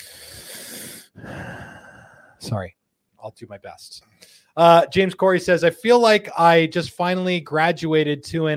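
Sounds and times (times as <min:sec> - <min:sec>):
loud airy breathing against the microphone: 0:00.0 - 0:02.5, 0:04.1 - 0:04.6
speech: 0:02.4 - 0:08.5.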